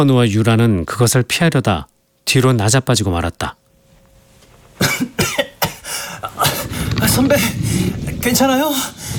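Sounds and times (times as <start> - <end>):
speech: 0.0 - 3.6, 7.2 - 9.1
person coughing from dust: 4.8 - 7.0.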